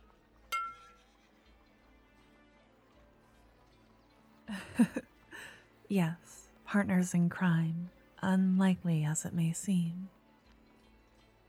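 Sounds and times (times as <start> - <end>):
glasses clinking in a toast: 0.5 - 1.0
speech: 4.5 - 5.1, 5.9 - 10.2.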